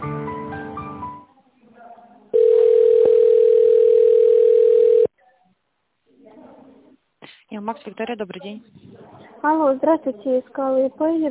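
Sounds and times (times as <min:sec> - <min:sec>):
telephone ringback tone while waiting for an answer: 0:02.4 - 0:05.1
speech: 0:07.7 - 0:11.2.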